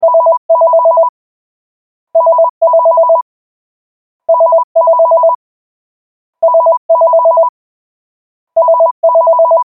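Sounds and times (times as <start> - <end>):
cordless phone ringtone: 0.0 - 1.1, 2.2 - 3.2, 4.3 - 5.4, 6.4 - 7.5, 8.6 - 9.7.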